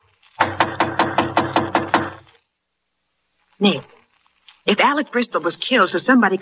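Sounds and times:
knocking on a partly open wooden apartment door: 0.4s - 2.2s
speech: 3.6s - 4.0s, 4.7s - 6.3s.

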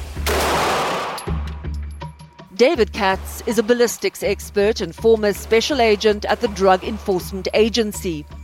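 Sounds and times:
12-gauge shotgun blast: 0.2s - 1.5s
speech: 2.6s - 8.4s.

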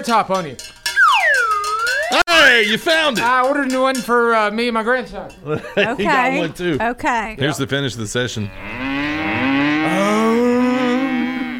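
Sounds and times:
speech: 0.0s - 0.8s, 2.1s - 8.8s
laughter: 5.4s - 6.8s
cow letting out a long loud moo: 8.5s - 11.5s.

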